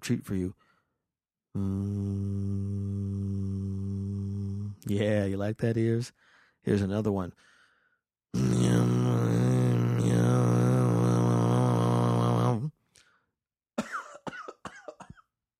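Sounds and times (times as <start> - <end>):
speech: 0.0 - 0.6, 1.5 - 2.7, 4.8 - 7.5, 8.3 - 8.6
amateur attempt at Tuvan throat singing: 1.6 - 4.9, 8.4 - 12.7
person coughing: 13.8 - 15.3.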